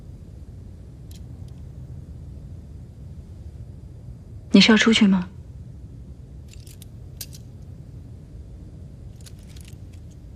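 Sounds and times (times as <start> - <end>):
steady low rumble: 0.0 - 10.3
speech: 4.6 - 5.4
keys set down clinking and jingling: 6.5 - 7.5, 9.1 - 10.2.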